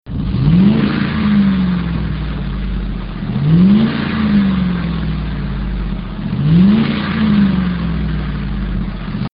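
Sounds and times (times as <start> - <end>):
F-150 5.4L Super Truck: 0.0 - 9.3.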